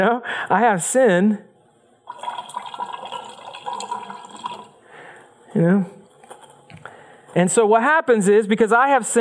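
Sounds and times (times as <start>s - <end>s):
speech: 0.0s - 1.5s, 5.5s - 6.0s, 7.3s - 9.1s
clear water pouring into a container: 2.1s - 4.8s.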